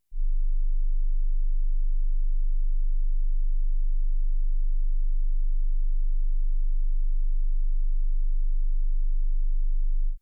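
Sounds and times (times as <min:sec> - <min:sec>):
25 Hz test signal: 0:00.1 - 0:10.2.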